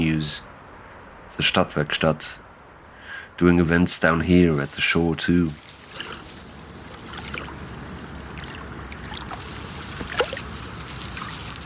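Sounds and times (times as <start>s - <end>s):
speech: 1.4s - 2.4s, 3.4s - 5.7s
big ship engine rumbling on the Danube by the Nibelungenbrücke: 3.9s - 11.6s
river water splashing and trickling: 4.1s - 11.6s
brief louder splash: 5.5s - 11.6s.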